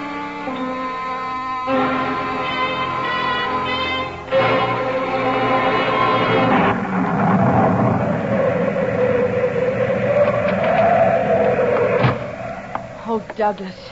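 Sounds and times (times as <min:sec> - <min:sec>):
howling whistling wind: 0:00.0 - 0:13.9
loud steady thunderstorm roar: 0:04.3 - 0:13.0
speech: 0:13.4 - 0:13.9.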